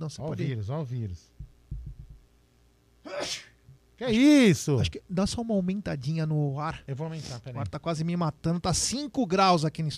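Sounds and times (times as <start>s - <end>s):
speech: 0.0s - 1.4s, 3.1s - 9.9s
low thumps: 1.4s - 2.3s
sneeze: 3.0s - 3.6s.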